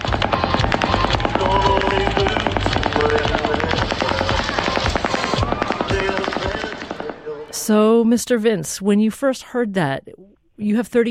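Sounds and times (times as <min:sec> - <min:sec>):
fully automatic weapon fire from an assault-style rifle: 0:00.0 - 0:07.6
speech: 0:07.7 - 0:11.0.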